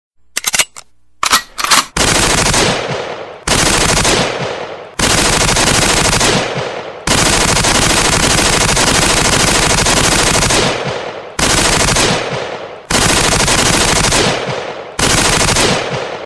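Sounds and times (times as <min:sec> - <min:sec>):
assault rifle firing: 0:01.2 - 0:16.2.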